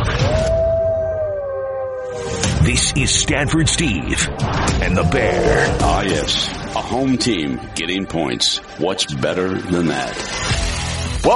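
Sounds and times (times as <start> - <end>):
dog howling: 0.1 - 2.4, 4.8 - 6.5
speech: 2.7 - 10.4.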